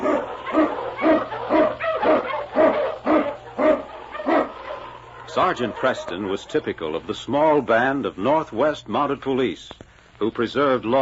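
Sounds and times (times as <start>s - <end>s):
husky sled lead dog barking: 0.0s - 6.3s
faint low hum: 0.0s - 11.0s
speech: 5.4s - 11.0s.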